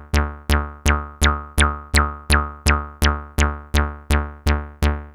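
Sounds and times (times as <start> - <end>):
four-pole resonant modular synthesizer filter: 0.2 - 4.7.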